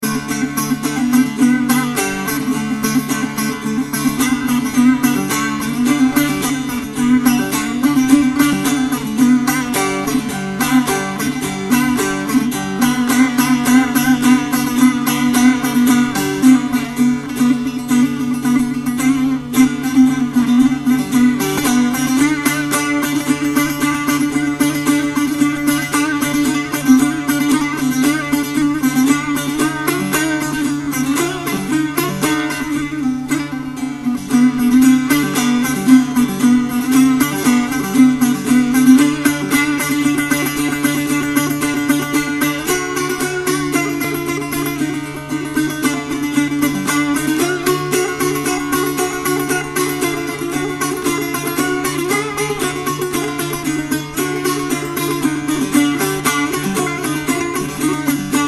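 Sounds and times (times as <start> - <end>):
tar playing: 0.0 - 58.4.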